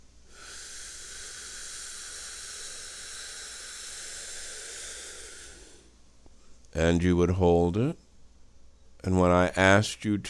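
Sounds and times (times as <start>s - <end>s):
slow deep breath inhaled through the nose: 0.0s - 6.7s
speech: 6.8s - 8.0s, 9.0s - 10.2s.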